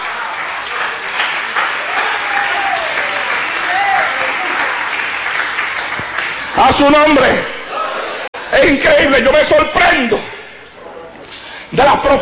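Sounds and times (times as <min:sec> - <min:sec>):
audience applauding: 0:00.0 - 0:07.9
speech: 0:06.6 - 0:07.6, 0:08.5 - 0:10.3, 0:11.7 - 0:12.2.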